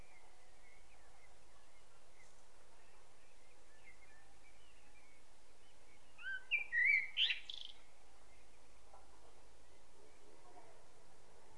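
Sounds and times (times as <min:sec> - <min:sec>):
common blackbird Turdus merula song phrase: 0:00.0 - 0:08.8
quiet background hiss: 0:00.0 - 0:11.5.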